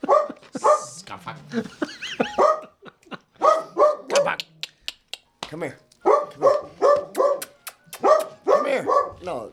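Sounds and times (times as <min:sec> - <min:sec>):
dog barking in high-pitched yaps: 0:00.0 - 0:01.0, 0:02.0 - 0:02.8, 0:03.4 - 0:04.4, 0:06.0 - 0:09.4
laughter: 0:00.0 - 0:03.5
speech: 0:01.5 - 0:01.9.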